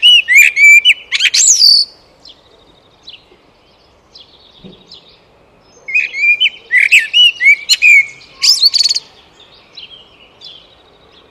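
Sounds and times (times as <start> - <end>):
Eurasian blackbird Turdus merula song with fluted warbling and squeaky twitter: 0.0 - 11.2.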